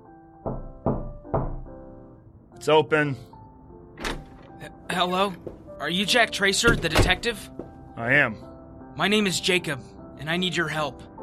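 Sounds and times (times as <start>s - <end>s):
solid knocks on a wooden door: 0.4s - 1.8s, 5.4s - 5.7s, 6.7s - 7.8s
speech: 2.6s - 3.3s, 4.9s - 11.1s.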